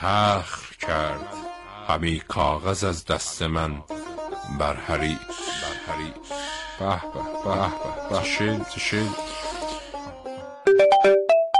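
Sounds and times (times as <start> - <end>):
speech: 0.0 - 9.4
laughter: 6.8 - 8.7
phone text message notification tone: 10.7 - 11.5.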